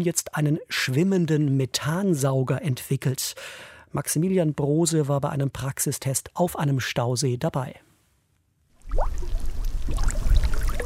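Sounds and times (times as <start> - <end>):
speech: 0.0 - 7.9
gas bubbles rising through lake water: 8.8 - 10.8.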